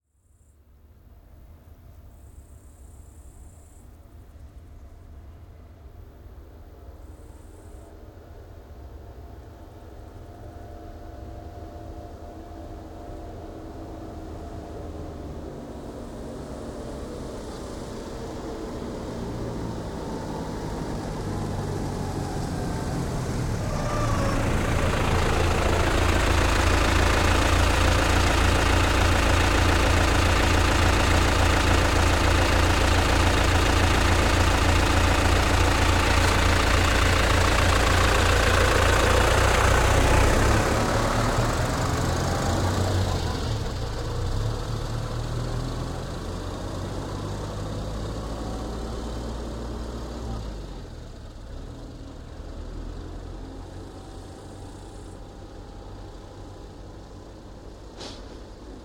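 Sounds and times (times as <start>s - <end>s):
Case IH CX90 tractor idling: 2.1s - 58.8s
Case IH CX90 tractor braking: 19.7s - 45.1s, 57.6s - 58.8s.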